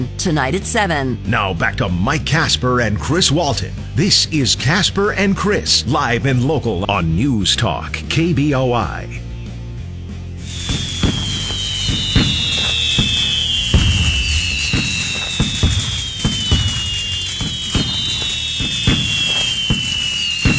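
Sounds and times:
speech: 0:00.0 - 0:09.2
shrill whistling rockets: 0:10.2 - 0:20.5
Fourth of July fireworks bursting and crackling: 0:10.4 - 0:20.5.

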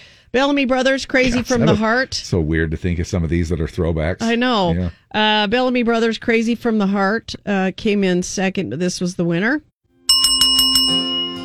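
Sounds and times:
speech: 0:00.3 - 0:09.7
bright bell ringing: 0:10.1 - 0:11.4.

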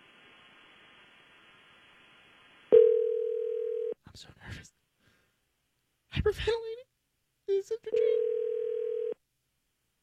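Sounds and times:
electronic telephone ring tone over a phone line: 0:02.7 - 0:04.0, 0:07.9 - 0:09.2
speech: 0:04.1 - 0:04.8, 0:06.1 - 0:06.8, 0:07.5 - 0:08.2.

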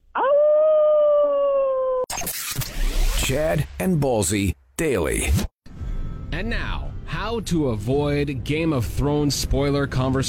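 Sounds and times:
person imitating a wolf howl: 0:00.1 - 0:02.0
speech: 0:03.3 - 0:05.5, 0:06.4 - 0:10.2.

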